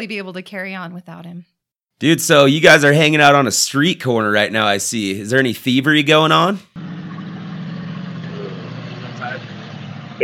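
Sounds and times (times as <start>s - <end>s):
speech: 0.0s - 7.0s
diesel truck engine idling on street: 6.8s - 10.2s.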